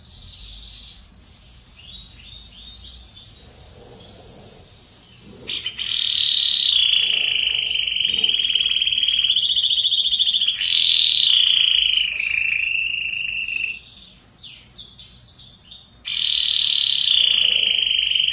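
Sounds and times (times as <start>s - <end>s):
red Belgian canary song: 0.0s - 18.3s.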